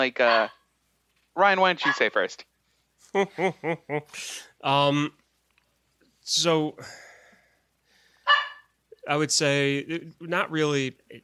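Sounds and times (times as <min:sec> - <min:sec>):
speech: 0:00.0 - 0:00.6, 0:01.4 - 0:02.5, 0:03.1 - 0:05.2, 0:06.3 - 0:07.1, 0:09.0 - 0:11.2
dog barking: 0:00.2 - 0:00.5, 0:01.8 - 0:02.1, 0:08.3 - 0:08.7
laughter: 0:03.1 - 0:04.2.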